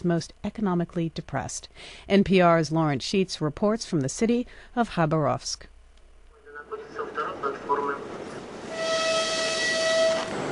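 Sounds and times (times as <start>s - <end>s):
speech: 0.0s - 5.7s
Trans-Siberian train arriving at station: 6.8s - 10.5s
long steady train horn blaring: 8.6s - 10.5s.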